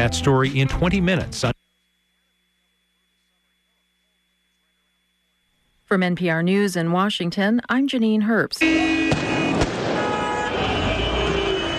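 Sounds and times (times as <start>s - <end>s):
speech: 0.0s - 1.6s, 5.9s - 9.0s
crowd-like noise: 8.6s - 11.7s
security forces firing tear gas: 9.0s - 11.7s.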